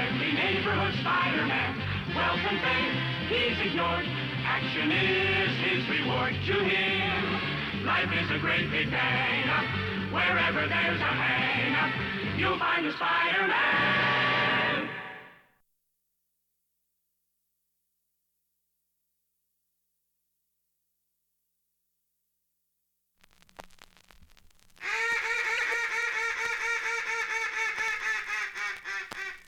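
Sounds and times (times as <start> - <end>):
speech: 0.1 - 14.0
duck call blown imitating mallard quacks: 24.8 - 29.4.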